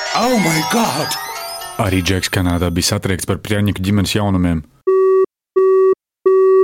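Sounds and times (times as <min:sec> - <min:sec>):
speech: 0:00.2 - 0:04.8
telephone beep on a phone call: 0:04.9 - 0:06.6.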